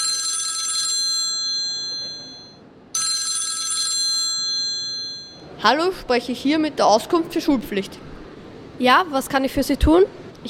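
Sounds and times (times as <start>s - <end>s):
telephone ringing after a number is dialed: 0.0s - 5.5s
speech: 5.6s - 8.1s, 8.8s - 10.4s.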